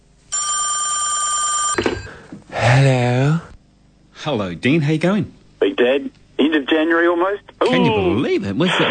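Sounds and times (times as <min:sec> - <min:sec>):
steady electronic ringing tone on the phone line: 0:00.3 - 0:02.2
speech: 0:04.2 - 0:08.8.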